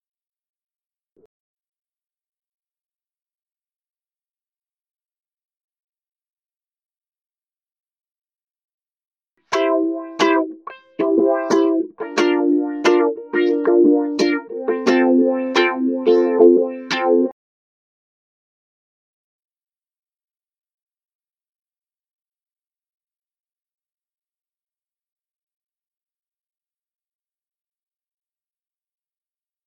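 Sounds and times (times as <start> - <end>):
ukulele: 9.5 - 17.3.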